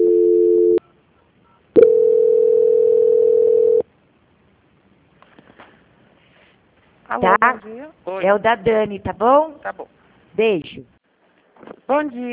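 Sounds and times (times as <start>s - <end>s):
telephone line tones during a call transfer: 0.0s - 0.8s, 1.8s - 3.8s
speech: 7.2s - 10.9s, 11.9s - 12.3s.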